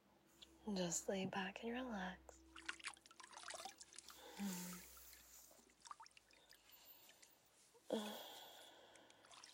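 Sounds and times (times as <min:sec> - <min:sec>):
speech: 0:00.6 - 0:02.4, 0:04.4 - 0:04.9, 0:07.9 - 0:08.2
water trickling and dripping: 0:02.4 - 0:07.5, 0:08.7 - 0:09.5
wet sponge with warm soapy water squishing over a person's arms and chest: 0:02.5 - 0:06.6.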